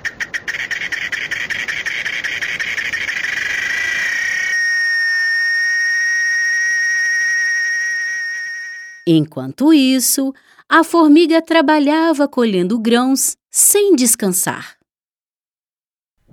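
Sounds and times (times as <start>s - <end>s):
cicada buzzing drone: 0.1s - 9.1s
speech: 9.1s - 14.8s.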